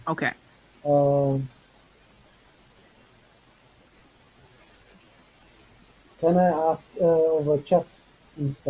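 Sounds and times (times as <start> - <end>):
broadband static hiss on a call line: 0.0 - 8.6
speech: 0.1 - 1.6, 6.2 - 8.6.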